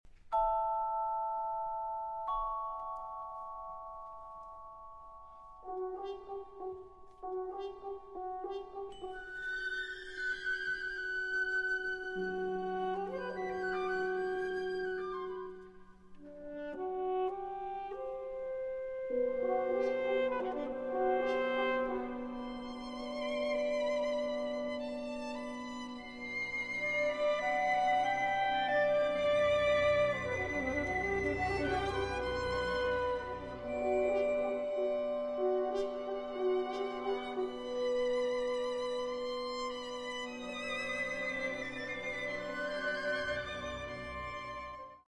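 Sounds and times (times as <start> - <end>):
percussion in a concerto: 0.1 - 45.0
orchestra playing a concerto: 5.6 - 45.0
alto saxophone in a concerto: 11.9 - 45.0.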